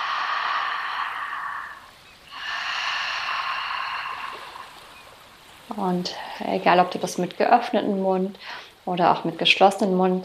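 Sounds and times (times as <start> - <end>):
soft hissing ujjayi breath through a narrowed throat: 0.0 - 5.1
speech: 5.7 - 10.2.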